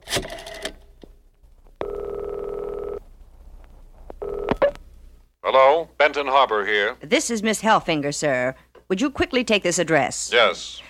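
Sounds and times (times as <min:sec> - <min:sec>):
loud steady telephone buzzing tone: 0:01.8 - 0:03.0, 0:04.2 - 0:04.8
speech: 0:05.8 - 0:10.8.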